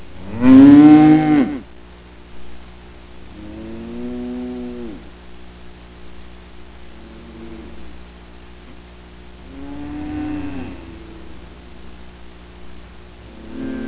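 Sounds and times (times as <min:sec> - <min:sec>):
cattle lowing: 0:00.2 - 0:01.6, 0:03.4 - 0:05.0, 0:09.5 - 0:11.4, 0:13.3 - 0:13.8.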